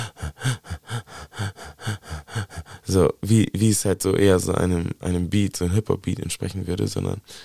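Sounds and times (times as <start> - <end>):
voice imitating rapid gasping breaths: 0.0 - 3.1
speech: 2.9 - 7.4.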